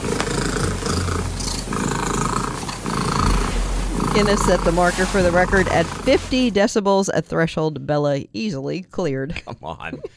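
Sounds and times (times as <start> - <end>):
loud domestic cat purring: 0.0 - 6.6
speech: 4.2 - 10.1.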